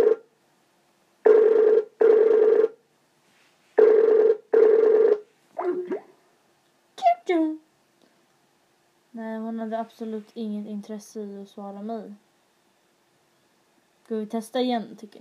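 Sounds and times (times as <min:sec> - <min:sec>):
telephone ringing on an unanswered call: 0:00.0 - 0:00.2, 0:01.3 - 0:02.8, 0:03.8 - 0:05.2
speech: 0:09.7 - 0:12.3, 0:14.1 - 0:15.1.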